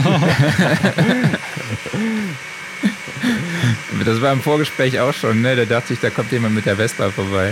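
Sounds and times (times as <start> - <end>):
voices chattering and chuckling: 0.0 - 4.4
motor whirring: 0.0 - 7.5
speech: 0.1 - 7.5.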